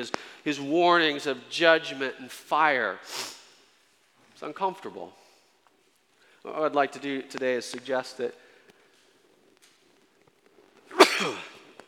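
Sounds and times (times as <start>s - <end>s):
speech: 0.0s - 3.3s, 4.4s - 5.2s, 6.4s - 8.4s, 11.2s - 11.5s
single sharp loud sneeze: 10.9s - 11.7s.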